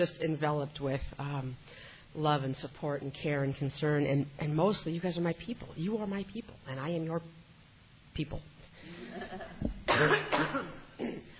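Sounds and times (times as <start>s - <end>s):
speech: 0.0s - 7.4s, 8.2s - 10.8s
harsh raspy coughing fit: 9.0s - 11.3s.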